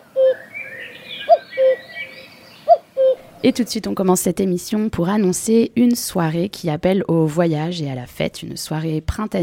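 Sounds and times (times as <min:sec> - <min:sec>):
cuckoo calling: 0:00.0 - 0:03.4
faint birdsong chirping: 0:00.0 - 0:03.7
speech: 0:03.4 - 0:09.4.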